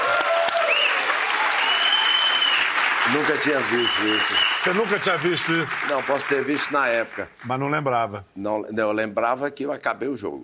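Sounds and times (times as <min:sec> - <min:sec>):
whistles and cheers from a crowd: 0:00.0 - 0:05.0
steady applause from a crowd: 0:00.0 - 0:07.4
speech: 0:03.1 - 0:10.4.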